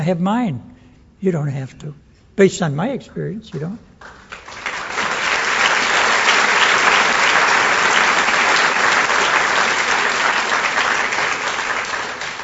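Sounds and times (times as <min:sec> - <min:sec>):
speech: 0:00.0 - 0:04.2
large audience applauding steadily: 0:04.0 - 0:12.4.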